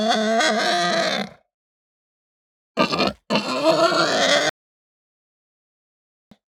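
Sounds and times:
Hampshire breed pig squealing harshly: 0.0s - 1.4s, 2.8s - 4.6s.

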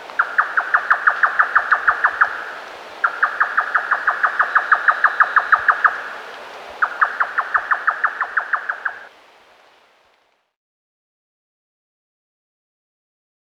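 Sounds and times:
grey nightjar calling: 0.0s - 9.1s.

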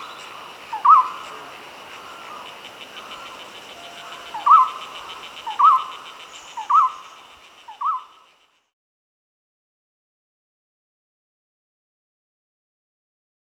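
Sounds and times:
Golden-throated barbet song, ringing upslurred notes: 0.0s - 8.3s
high insect-like hum: 0.0s - 8.7s.

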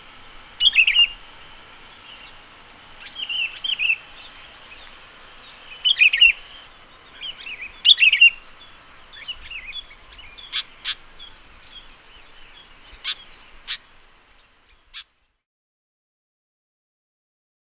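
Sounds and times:
faint steady background hiss: 0.0s - 15.5s
sooty-headed bulbul calling: 0.6s - 15.3s.

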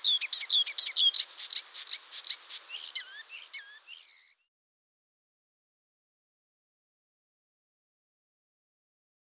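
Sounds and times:
icterine warbler singing varied chirps and bright repeated notes: 0.0s - 4.3s.

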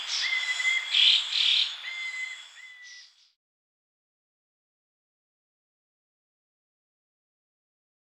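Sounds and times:
Ferruginous babbler short clear whistles: 0.2s - 0.9s, 1.9s - 3.2s.

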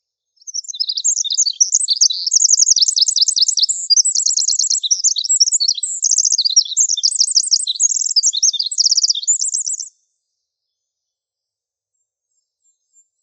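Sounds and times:
Pacific wren singing high rapid trills and twittering notes in coniferous forest: 0.4s - 9.9s.

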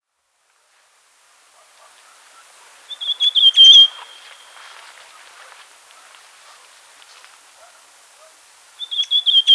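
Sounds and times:
rufous sibia whistled song: 2.9s - 4.6s, 8.8s - 9.5s.

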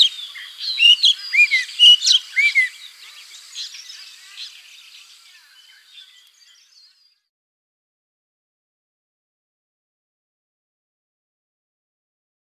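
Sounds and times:
rufous-necked laughingthrush whistled slurred calls: 0.0s - 6.9s
rufous-necked laughingthrush chatter: 0.0s - 7.0s.

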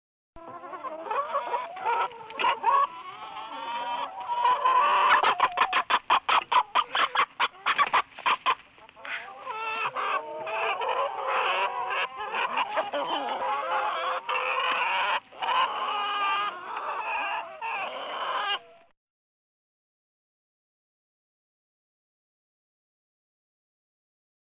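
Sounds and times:
hens clucking in a chicken coop: 0.4s - 18.9s.

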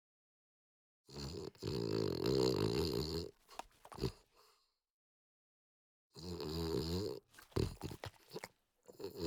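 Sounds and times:
French Bulldog giving long raspy snorts: 1.1s - 4.6s, 6.2s - 9.2s.

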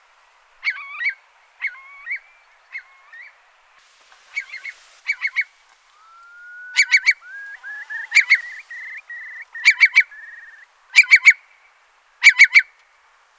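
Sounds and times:
Eurasian curlew giving rising and upslurred whistled calls: 0.6s - 3.4s, 4.2s - 11.4s, 12.2s - 12.8s.

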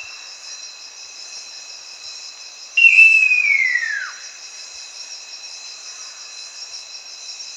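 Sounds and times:
insect drone: 0.0s - 7.5s
Great eared nightjar whistle call: 2.8s - 4.2s.

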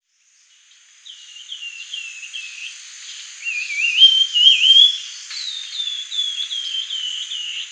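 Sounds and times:
grey-headed babbler whistled song: 3.5s - 7.7s.

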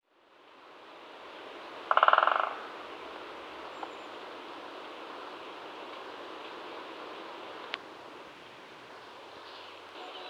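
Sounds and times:
background hiss: 0.1s - 10.2s
great spotted woodpecker drumming: 1.9s - 2.6s.

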